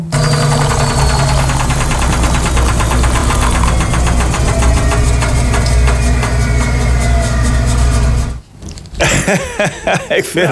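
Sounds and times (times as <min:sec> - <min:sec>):
washing machine running: 0:00.1 - 0:08.4
laughter: 0:09.0 - 0:10.5
speech: 0:09.3 - 0:10.5.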